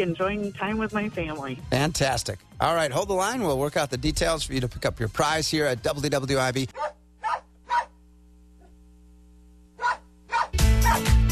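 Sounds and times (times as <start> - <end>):
speech: 0.0 - 6.8
dog barking: 6.7 - 8.0, 9.8 - 11.0.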